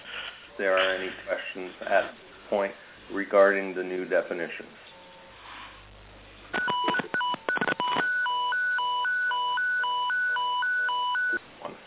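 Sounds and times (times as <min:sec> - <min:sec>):
speech: 0:00.6 - 0:04.8
rapid clicky beeps: 0:06.6 - 0:11.4.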